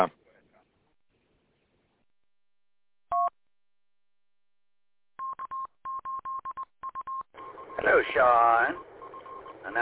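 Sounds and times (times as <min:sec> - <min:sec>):
IP phone keypad DTMF tones: 0:05.2 - 0:07.9, 0:08.6 - 0:09.7
speech: 0:07.8 - 0:08.9.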